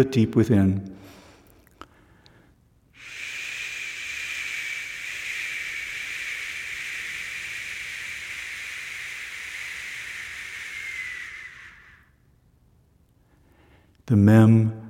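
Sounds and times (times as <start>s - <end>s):
speech: 0.0s - 0.9s, 14.1s - 14.8s
voice making a long sh sound of the Hebrew letter Shin: 3.0s - 12.2s.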